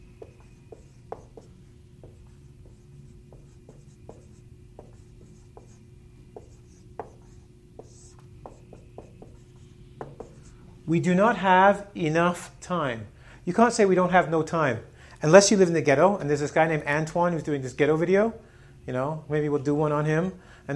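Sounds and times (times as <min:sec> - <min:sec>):
writing on a board: 0:00.0 - 0:10.6
speech: 0:10.9 - 0:20.7.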